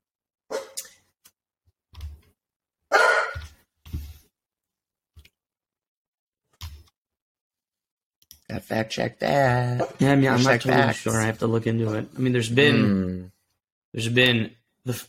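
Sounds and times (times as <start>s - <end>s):
pet dog giving short woofs: 0.5s - 0.8s, 2.9s - 3.4s
speech: 8.6s - 13.3s, 13.9s - 15.0s.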